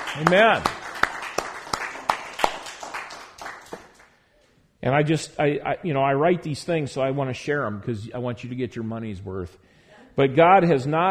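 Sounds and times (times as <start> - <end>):
audience clapping: 0.0 - 4.2
speech: 0.2 - 0.8, 4.8 - 9.6, 10.2 - 11.1.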